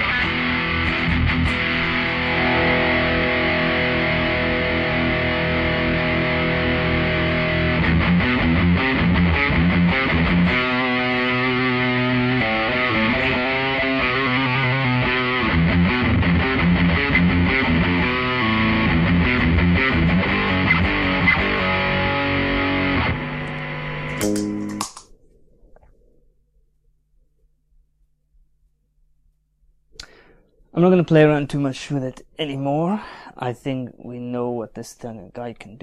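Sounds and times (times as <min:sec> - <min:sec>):
heavily distorted metal electric guitar riff with scooped mids: 0:00.0 - 0:25.1
speech: 0:30.9 - 0:35.8.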